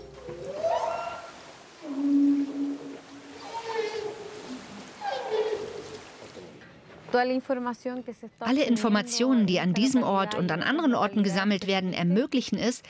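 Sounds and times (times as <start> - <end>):
whale calls recorded underwater: 0.5 - 6.1
soft hiss of water noise: 0.5 - 6.6
speech: 7.1 - 12.8.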